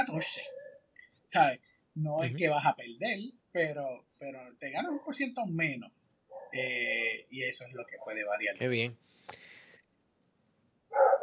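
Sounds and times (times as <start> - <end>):
speech: 0.0 - 0.6, 1.3 - 9.5
dog giving a loud bark: 0.1 - 0.8, 6.3 - 6.6, 10.9 - 11.2.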